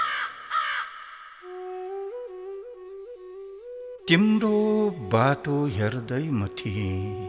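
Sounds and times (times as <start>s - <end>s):
crow cawing: 0.0s - 1.5s
speech: 4.1s - 7.2s.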